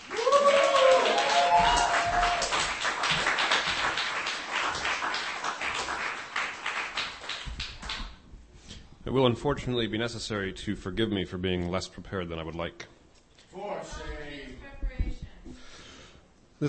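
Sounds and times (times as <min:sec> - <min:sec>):
person whooping: 0:00.0 - 0:02.6
audience clapping for a performer: 0:00.0 - 0:08.2
speech: 0:09.1 - 0:12.9.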